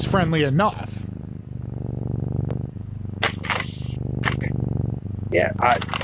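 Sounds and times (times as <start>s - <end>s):
large cat purring deeply: 0.0s - 6.0s
speech: 0.1s - 1.0s, 5.3s - 6.0s
large cat breathy rasps: 0.9s - 4.9s.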